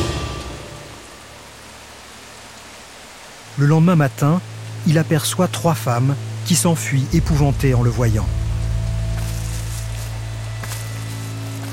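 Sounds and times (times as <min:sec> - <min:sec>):
low rumbling undertone: 0:00.0 - 0:01.5, 0:06.7 - 0:11.5
torrential rain falling: 0:00.0 - 0:11.7
speech: 0:03.6 - 0:08.4.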